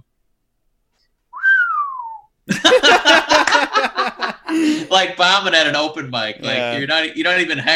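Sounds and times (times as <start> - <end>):
person whistling a single long note sliding downward: 1.4 - 2.3
laughter: 2.5 - 5.2, 6.4 - 7.7
speech: 4.9 - 7.7.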